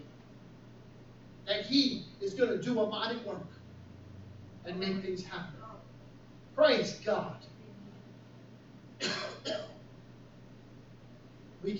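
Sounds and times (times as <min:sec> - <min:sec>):
speech: 0:01.5 - 0:03.6, 0:04.6 - 0:05.6, 0:06.6 - 0:07.5
preacher clearing throat: 0:09.0 - 0:09.8.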